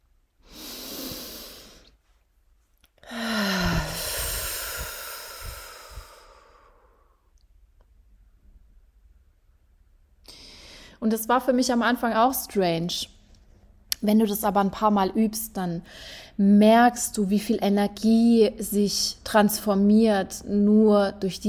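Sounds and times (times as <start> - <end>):
deep inhale: 0.4 - 2.0, 3.0 - 7.3, 10.3 - 11.0, 15.9 - 16.4
long loud voiced sigh through the mouth: 3.0 - 6.3
speech: 11.0 - 13.2, 14.0 - 21.4.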